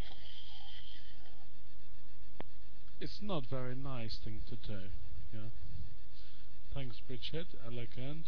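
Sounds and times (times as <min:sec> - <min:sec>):
person noisily slurping a drink: 0:00.0 - 0:01.4
speech: 0:03.0 - 0:05.6, 0:06.8 - 0:08.2.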